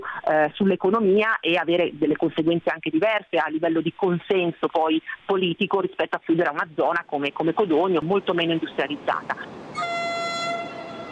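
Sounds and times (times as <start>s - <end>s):
speech: 0.3s - 9.8s
Intercity Night train horn departing from a station platform: 9.8s - 11.0s.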